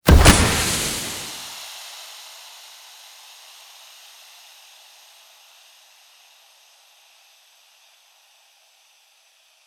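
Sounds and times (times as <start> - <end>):
smoke grenade emitting smoke: 0.0 - 1.4.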